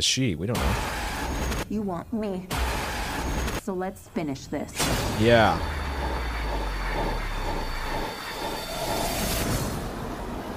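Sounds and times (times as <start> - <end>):
speech: 0.0 - 2.7, 3.7 - 5.8
subway train rumbling: 5.1 - 10.5.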